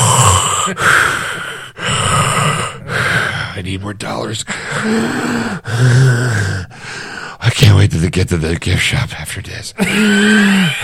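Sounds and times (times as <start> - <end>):
heavy breathing: 0.0 - 3.8, 4.4 - 7.4, 9.8 - 10.8
speech: 0.7 - 1.1, 3.6 - 6.8, 7.4 - 10.8.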